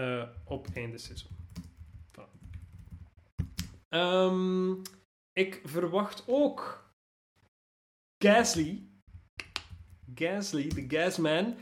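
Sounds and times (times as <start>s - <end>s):
speech: 0.0s - 1.4s, 3.9s - 6.8s, 8.2s - 8.9s, 10.1s - 11.6s
typing on a computer keyboard: 0.6s - 3.7s.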